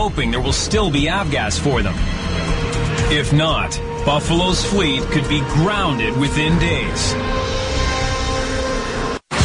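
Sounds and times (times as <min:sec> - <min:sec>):
speech: 0:00.0 - 0:07.4
trucks driving away with low engine drone: 0:00.0 - 0:07.4
road noise: 0:00.0 - 0:09.3.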